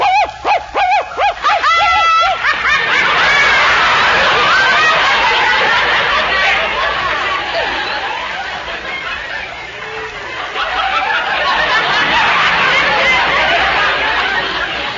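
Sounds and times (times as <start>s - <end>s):
human voice imitating a dog barking in a mock acting tryout: 0.0s - 2.4s
babble and laughter: 0.0s - 14.9s.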